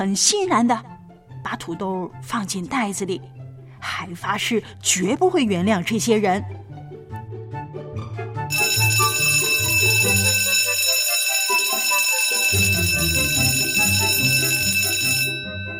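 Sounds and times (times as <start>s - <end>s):
speech: 0.0s - 6.7s
school dismissal bell ringing with metallic clanging: 8.5s - 15.7s.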